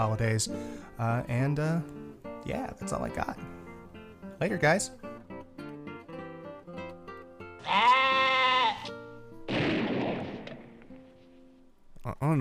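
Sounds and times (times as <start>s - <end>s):
speech: 0.0s - 3.6s, 4.4s - 5.1s, 12.0s - 12.3s
sheep bleating: 7.6s - 9.1s.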